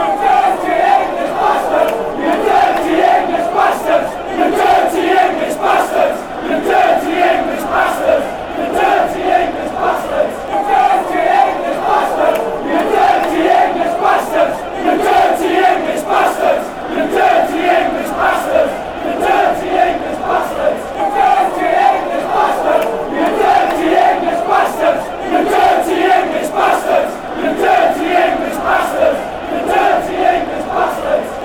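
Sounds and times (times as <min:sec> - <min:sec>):
crowd chanting dirty English chants: 0:00.0 - 0:31.4.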